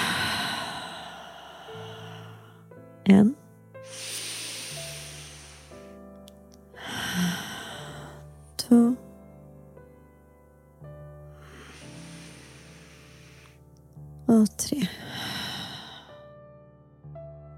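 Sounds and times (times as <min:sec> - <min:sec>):
person breathing in through nose, out through mouth: 0:00.0 - 0:02.7, 0:03.8 - 0:06.0, 0:06.8 - 0:08.3, 0:11.3 - 0:13.7, 0:15.0 - 0:16.2
speech: 0:03.1 - 0:04.1.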